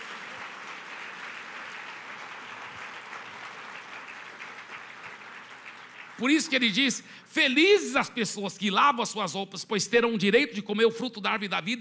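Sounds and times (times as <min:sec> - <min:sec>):
large group applauding: 0:00.0 - 0:07.2
speech: 0:06.2 - 0:11.7.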